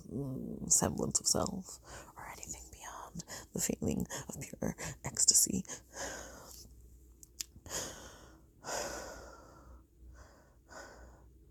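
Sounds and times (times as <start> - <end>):
speech: 0.2 - 2.6, 3.2 - 6.3
heavy breathing slowing down: 5.6 - 6.7, 7.6 - 11.3.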